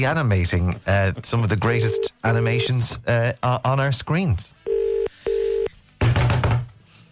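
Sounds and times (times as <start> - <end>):
speech: 0.0 - 4.6
telephone ringing tone beeps on a call: 1.8 - 2.7, 4.7 - 5.7.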